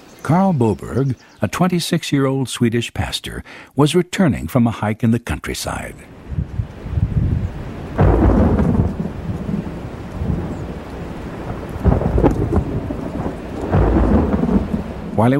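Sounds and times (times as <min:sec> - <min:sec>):
speech: 0:00.2 - 0:06.5
steady summer afternoon rain in the Swedish countryside: 0:05.7 - 0:15.3
deep rolling thunder in the Swedish countryside: 0:06.3 - 0:15.3.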